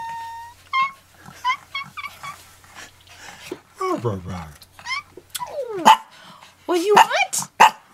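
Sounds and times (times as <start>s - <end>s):
dog barking in short high-pitched yips: 0.0s - 2.4s, 4.8s - 5.1s, 5.8s - 6.1s, 6.9s - 7.8s
dog making whiny howling cries: 0.0s - 2.4s, 4.8s - 6.0s
speech: 4.0s - 4.6s, 6.7s - 7.5s.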